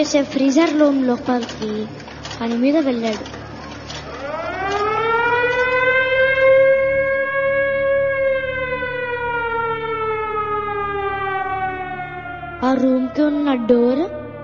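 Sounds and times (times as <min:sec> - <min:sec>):
speech: 0:00.0 - 0:03.4, 0:12.6 - 0:14.2
factory siren wailing in the evening: 0:03.1 - 0:14.4.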